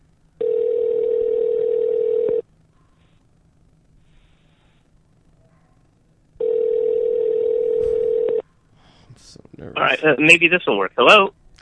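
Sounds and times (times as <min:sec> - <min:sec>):
faint noise: 0:00.0 - 0:11.5
electronic ringback tones of an outgoing phone call: 0:00.4 - 0:02.4, 0:06.4 - 0:08.4
speech: 0:09.8 - 0:11.5.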